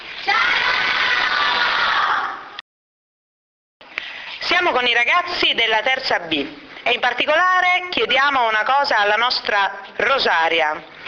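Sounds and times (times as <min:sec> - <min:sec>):
group of third-grade schoolchildren shouting a greeting in unison: 0:00.2 - 0:02.6
speech: 0:04.6 - 0:10.9.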